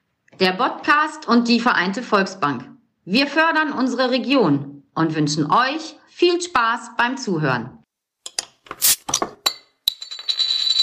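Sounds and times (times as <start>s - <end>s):
speech: 0.4s - 7.8s
glasses clinking in a toast: 9.1s - 10.8s.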